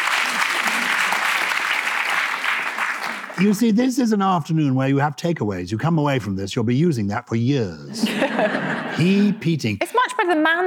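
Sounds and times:
audience applauding: 0:00.0 - 0:03.7
speech: 0:03.4 - 0:10.6
laughter: 0:07.9 - 0:09.5.

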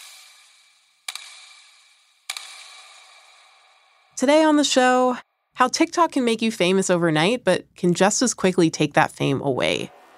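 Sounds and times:
crisp clock ticks: 0:01.1 - 0:04.3
speech: 0:04.2 - 0:10.0.

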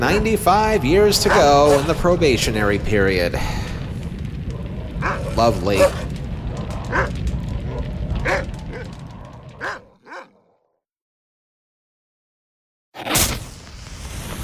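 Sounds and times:
speech: 0:00.0 - 0:03.7, 0:05.4 - 0:06.1, 0:06.9 - 0:07.2
abrupt loud burst of noise: 0:00.0 - 0:09.5
many-headed satanic dog barking: 0:05.0 - 0:06.1, 0:06.9 - 0:08.9, 0:09.6 - 0:10.5.

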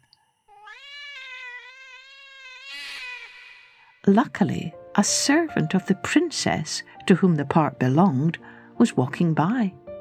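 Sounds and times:
cat screaming from a tree: 0:00.5 - 0:04.0
speech: 0:04.0 - 0:09.8.

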